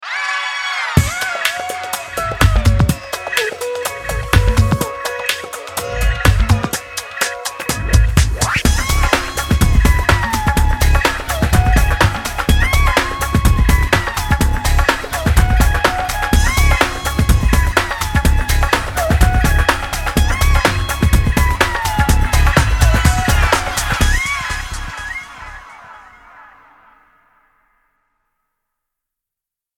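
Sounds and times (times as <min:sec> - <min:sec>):
ethno style fusion music: 0:01.0 - 0:26.3.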